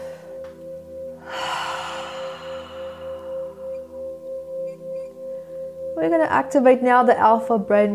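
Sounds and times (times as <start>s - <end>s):
steady low tonal hum: 0.0s - 7.9s
deep breath in and out: 1.2s - 4.0s
speech: 6.0s - 7.9s.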